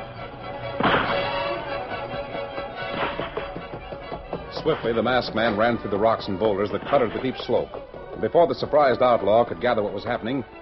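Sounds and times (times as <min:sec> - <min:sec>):
rifle gunshots on a rocky boulder-strewn slope: 0:00.8 - 0:01.4
speech: 0:04.6 - 0:10.6.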